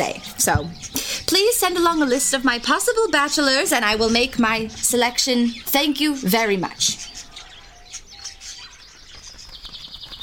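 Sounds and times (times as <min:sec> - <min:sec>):
small birds chirping and tweeting as they fly away: 0:00.0 - 0:10.2
speech: 0:00.4 - 0:07.1
soft flutter of small birds' wings: 0:03.7 - 0:10.2.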